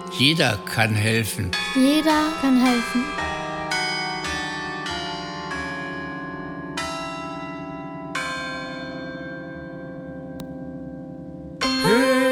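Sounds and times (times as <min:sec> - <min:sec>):
church bells ringing: 0:00.0 - 0:11.8
speech: 0:00.1 - 0:03.2.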